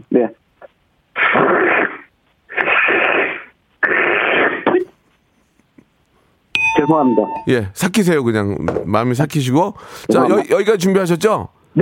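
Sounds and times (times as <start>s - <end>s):
speech: 0.0s - 0.4s, 6.9s - 11.8s
person imitating a leopard cat's cry with raspy hissing snarls: 1.2s - 5.0s.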